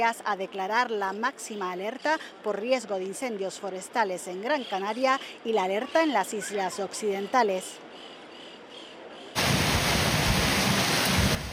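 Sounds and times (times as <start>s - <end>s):
speech: 0.0s - 8.1s
hailstones up to 5 centimetres hammering down in Solsona Catalonia: 9.4s - 11.5s
heavy rain in intense thunderstorm in Solsona Catalonia: 9.4s - 11.5s.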